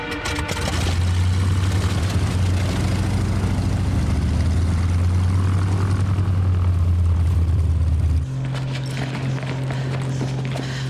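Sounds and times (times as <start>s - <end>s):
propeller airplane engine starting up and droning: 0.1s - 10.8s.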